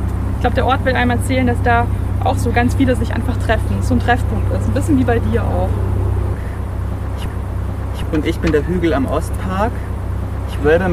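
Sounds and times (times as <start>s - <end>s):
car traffic rushing past: 0.0s - 10.9s
speech: 0.4s - 6.0s, 8.1s - 9.9s, 10.6s - 10.9s
passing vehicle swish: 5.3s - 8.7s.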